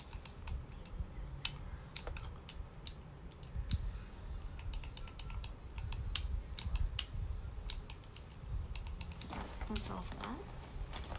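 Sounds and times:
low rumble: 0.0s - 11.1s
rummaging through plastic pens and markers: 9.2s - 11.1s.

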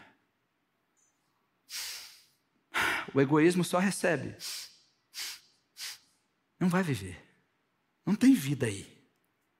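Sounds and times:
person breathing in and out during a sermon: 1.7s - 3.2s, 4.4s - 6.2s
speech: 3.1s - 4.6s, 6.6s - 7.3s, 8.0s - 9.0s.

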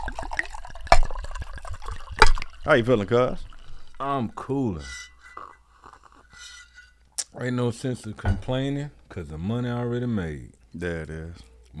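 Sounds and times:
libation drink pouring and gurgling into a glass: 0.0s - 6.4s
speech: 2.6s - 5.1s, 7.4s - 11.7s.

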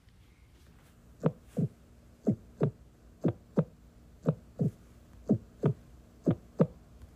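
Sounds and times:
faint low hum: 0.0s - 7.1s
heart beating: 1.2s - 6.8s.

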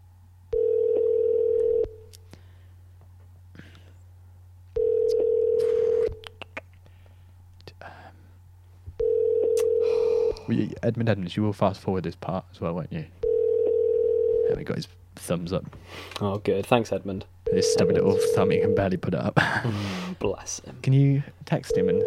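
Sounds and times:
phone line ringback tone while a call waits to connect: 0.5s - 2.0s, 4.8s - 6.2s, 9.0s - 10.1s, 13.2s - 14.5s, 17.5s - 18.8s, 21.7s - 22.0s
speech: 10.5s - 13.2s, 14.5s - 22.0s.

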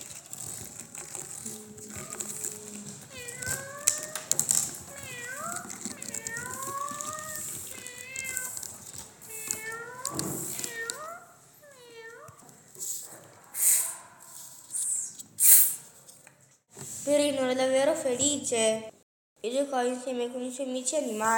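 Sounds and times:
cat scratching tree trunk: 0.0s - 11.0s
cat meowing: 1.0s - 12.5s
speech: 17.4s - 21.3s.

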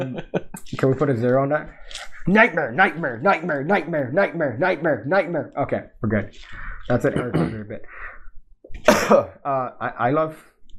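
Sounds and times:
speech: 0.0s - 8.1s, 8.7s - 10.5s
voiced vocal sounds: 1.6s - 9.2s
loud harsh cough peaking the microphone: 7.1s - 7.8s, 8.8s - 9.4s.

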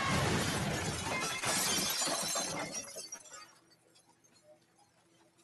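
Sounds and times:
glass shattering during a film fight scene: 0.1s - 4.4s
glass tinkling: 1.1s - 5.0s.

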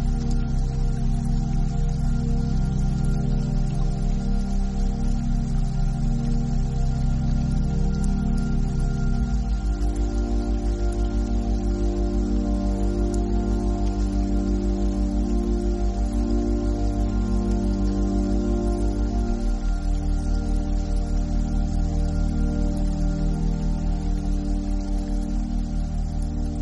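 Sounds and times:
beta binaural tone bed of low sustained hums: 0.0s - 26.6s.

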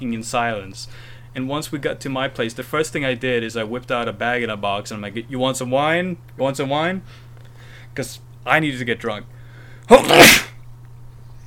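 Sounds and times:
speech: 0.0s - 7.2s, 8.0s - 10.5s
faint low hum: 0.0s - 11.4s
sneeze: 9.9s - 10.6s.

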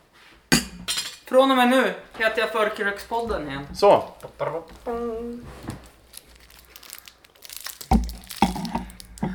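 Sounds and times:
speech: 1.3s - 5.7s
candy wrapper crinkling as someone eats sweets: 4.0s - 4.9s, 5.5s - 9.3s.

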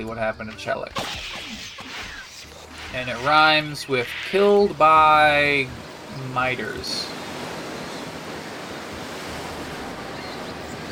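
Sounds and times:
speech: 0.0s - 1.7s, 2.9s - 7.2s
ocean surf washing against the shore: 3.0s - 10.8s.

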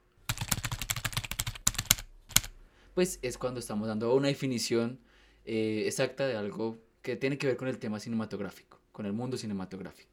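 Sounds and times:
keystrokes on a computer keyboard: 0.2s - 2.6s
speech: 3.0s - 10.1s.

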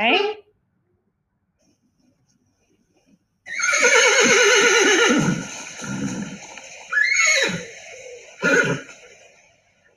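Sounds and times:
speech: 0.0s - 0.4s
horse neighing: 3.5s - 7.8s, 8.4s - 9.0s.

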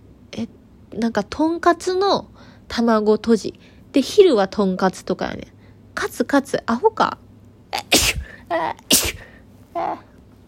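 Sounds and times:
speech: 0.3s - 7.8s, 8.5s - 9.2s, 9.8s - 10.1s
person sneezing: 7.8s - 9.4s
sharp breath before a sneeze: 8.1s - 8.4s.

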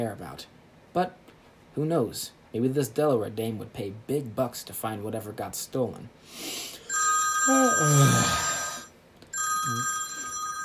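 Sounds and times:
speech: 0.0s - 6.7s, 7.4s - 8.5s
telephone bell ringing with electronic trill: 6.9s - 10.6s.

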